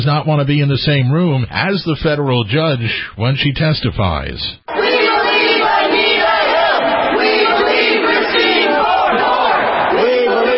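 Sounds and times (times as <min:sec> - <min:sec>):
speech: 0:00.0 - 0:05.0
crowd of demonstrators protesting a Supreme Court nomination chanting and shouting: 0:04.7 - 0:10.5.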